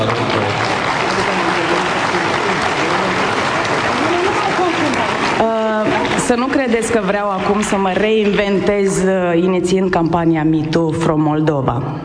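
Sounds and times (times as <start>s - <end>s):
speech: 0.0s - 0.3s, 6.3s - 12.0s
crowd applauding: 0.0s - 9.1s.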